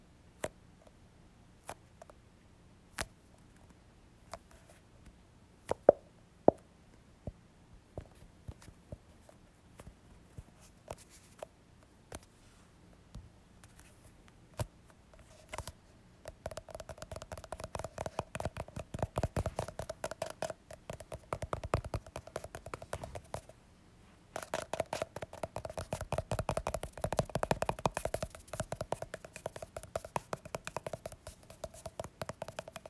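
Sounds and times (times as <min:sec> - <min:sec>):
faint low hum: 0:00.0 - 0:32.8
taps and clicks on a tube of lotion: 0:15.6 - 0:23.5, 0:24.4 - 0:32.8.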